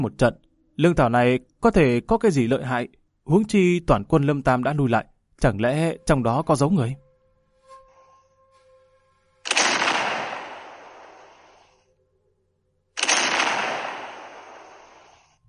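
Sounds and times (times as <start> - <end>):
speech: 0.0 - 7.0
loud cannon blasts fired near a city wall and an imperial camp: 9.5 - 11.6, 13.0 - 15.2.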